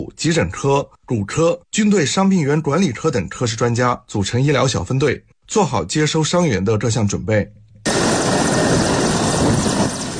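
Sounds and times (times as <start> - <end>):
speech: 0.1 - 7.6
military air force helicopter landing on a hospital helipad: 7.9 - 10.1.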